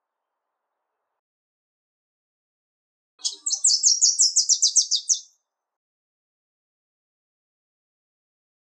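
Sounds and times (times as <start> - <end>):
Wilson's warbler fast high chatter of repeated sharp notes: 3.2 - 5.3.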